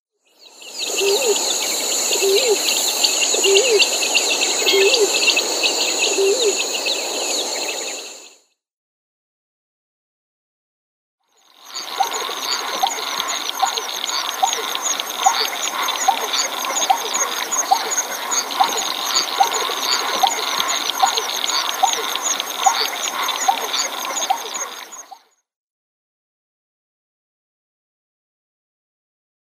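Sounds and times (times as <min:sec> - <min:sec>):
painted snipe display calls: 0:00.6 - 0:08.3, 0:11.5 - 0:25.2.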